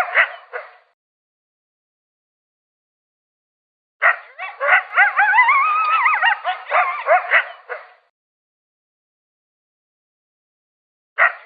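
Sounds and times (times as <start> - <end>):
coyote short barking yips: 0.0 - 0.8, 4.0 - 8.0, 11.2 - 11.4
coyote howl with wobbling siren-like pitch: 4.2 - 7.9.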